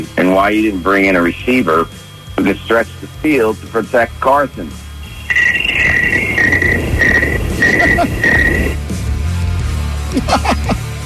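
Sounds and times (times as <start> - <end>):
speech: 0.0 - 4.8, 7.8 - 8.8, 10.1 - 10.8
crickets chirping in high-pitched trilling bursts: 0.0 - 8.8
laughter: 7.5 - 8.8, 10.1 - 10.9.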